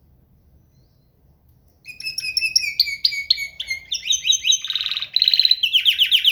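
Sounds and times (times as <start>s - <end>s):
canary song: 1.9s - 6.3s.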